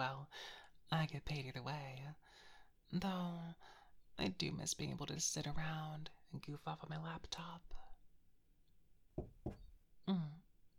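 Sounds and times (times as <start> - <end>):
speech: 0.0 - 7.9, 9.2 - 10.5
solid knocks on a door: 9.2 - 9.8.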